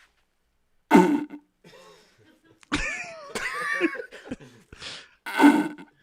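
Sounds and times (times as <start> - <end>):
person blowing wet raspy fart noises with their mouth: 0.9 - 1.5, 5.3 - 6.0
laughter: 1.6 - 4.7.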